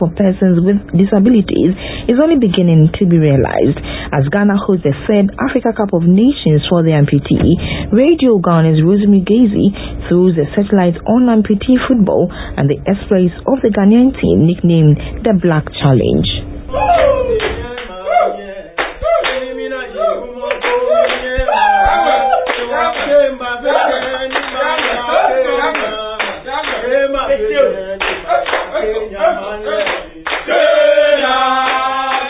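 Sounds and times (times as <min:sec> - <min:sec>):
speech: 0:00.0 - 0:18.4
players singing a rousing morale chant: 0:16.7 - 0:32.2
players clapping in a steady rhythm: 0:16.9 - 0:18.0, 0:18.8 - 0:27.3, 0:28.0 - 0:29.0, 0:29.7 - 0:32.2.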